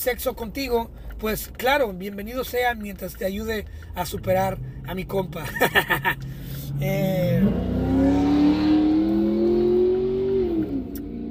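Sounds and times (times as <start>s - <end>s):
speech: 0.0s - 8.2s
Mustang GT engine revving: 3.0s - 11.2s
laughter: 5.4s - 6.3s.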